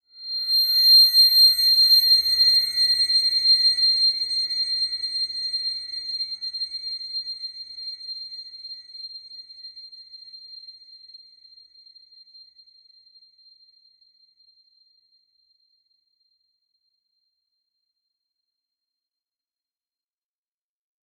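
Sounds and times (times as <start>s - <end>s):
horror shrill high-pitched whine: 0.2s - 7.0s.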